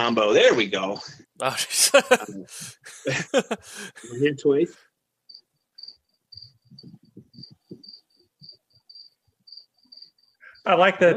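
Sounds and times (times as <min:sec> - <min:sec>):
speech: 0:00.0 - 0:04.9, 0:10.6 - 0:11.1
crickets chirping: 0:01.0 - 0:04.2, 0:05.2 - 0:11.0
laughter: 0:01.4 - 0:04.3.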